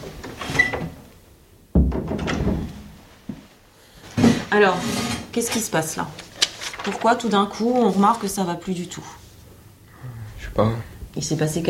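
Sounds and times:
door pushed shut with a solid thud: 0:01.7 - 0:02.8
speech: 0:04.5 - 0:09.2, 0:10.6 - 0:11.6.

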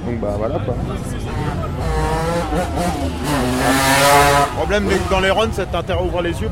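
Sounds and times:
speech: 0:00.1 - 0:06.5
BMW M3 convertible engine of about 400 horsepower revving past: 0:00.7 - 0:05.9.

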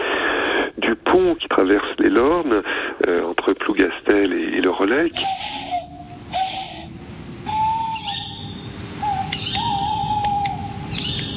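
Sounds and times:
hiss: 0:00.0 - 0:11.3
speech: 0:01.2 - 0:06.4
tawny owl hooting at night in woods: 0:05.1 - 0:11.3.

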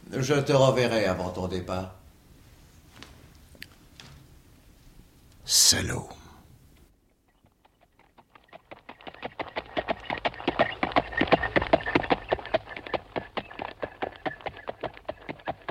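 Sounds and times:
speech: 0:00.1 - 0:02.0, 0:05.5 - 0:06.2
horse hooves clip-clopping at a brisk trot: 0:07.3 - 0:15.6
horse-drawn carriage passing: 0:08.3 - 0:15.6.

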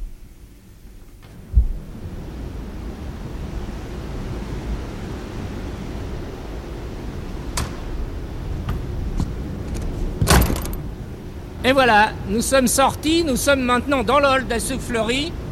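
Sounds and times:
wind tunnel airflow roaring heard from the hall outside the test chamber: 0:00.0 - 0:15.5
dull thump: 0:01.2 - 0:01.8, 0:08.6 - 0:10.9
sharp knocks: 0:08.7 - 0:10.9
speech: 0:11.7 - 0:15.4.

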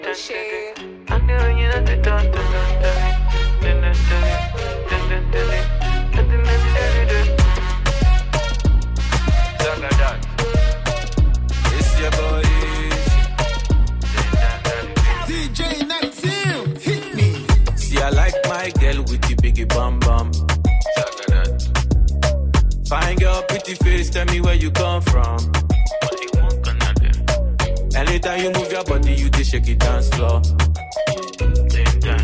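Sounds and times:
Nigerian afrobeats song on the radio: 0:00.0 - 0:32.2
speech: 0:00.1 - 0:02.6, 0:29.2 - 0:30.7.

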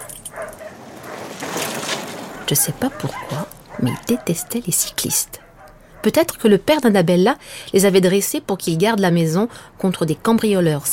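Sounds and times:
dogs barking and yipping: 0:00.0 - 0:06.4
speech: 0:02.5 - 0:05.4, 0:06.0 - 0:10.9.

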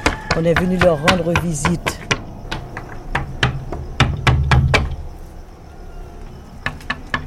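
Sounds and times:
firm knocking on temple doors: 0:00.0 - 0:05.0
speech: 0:00.4 - 0:02.0.

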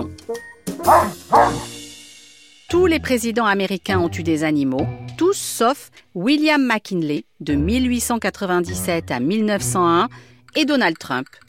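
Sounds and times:
speech: 0:00.3 - 0:01.7, 0:02.7 - 0:11.4
dog barking: 0:00.8 - 0:01.7.

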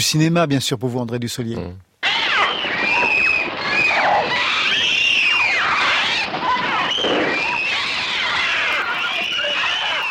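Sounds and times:
speech: 0:00.0 - 0:01.9
shrill synthesized bird screeches from a film: 0:02.0 - 0:10.0.

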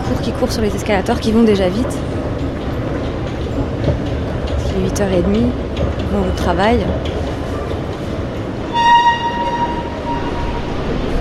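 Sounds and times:
metro train rumbling through Charles de Gaulle–Étoile metro station: 0:00.0 - 0:11.2
speech: 0:00.1 - 0:02.2, 0:04.8 - 0:07.3
bright high tonal squeal or horn in metro station: 0:08.7 - 0:11.2.

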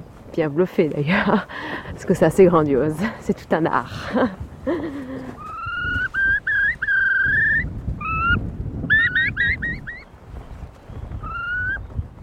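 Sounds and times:
speech: 0:00.4 - 0:05.0
Eurasian curlew calling in rising whistled notes: 0:05.2 - 0:10.2, 0:10.8 - 0:12.0.

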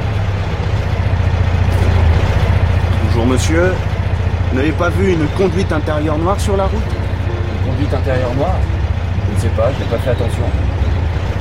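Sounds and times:
car engine idling at a gendarmerie roadblock: 0:00.0 - 0:11.3
speech: 0:03.4 - 0:03.9, 0:04.5 - 0:07.0, 0:07.6 - 0:10.7.

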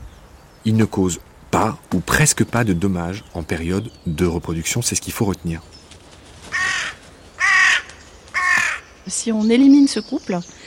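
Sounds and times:
speech: 0:00.6 - 0:05.8, 0:09.2 - 0:10.6
crow cawing: 0:06.4 - 0:09.0.

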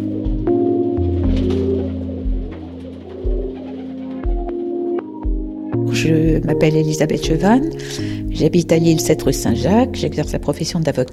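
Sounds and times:
pigeons cooing: 0:00.0 - 0:05.8
speech: 0:06.0 - 0:11.1.

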